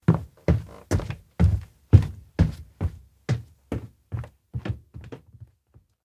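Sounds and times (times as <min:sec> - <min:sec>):
footsteps thudding indoors in an abandoned cafe: 0:00.0 - 0:05.9.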